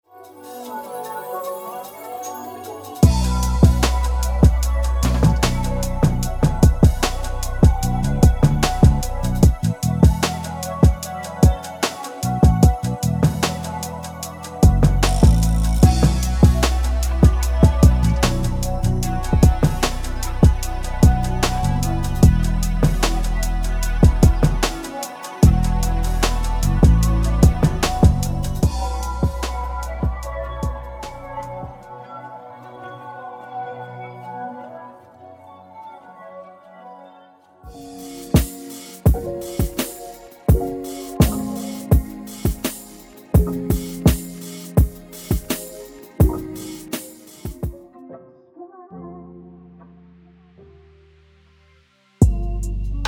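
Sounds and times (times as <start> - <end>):
rap drum kit: 2.9 - 31.8, 37.7 - 47.8, 52.2 - 53.0.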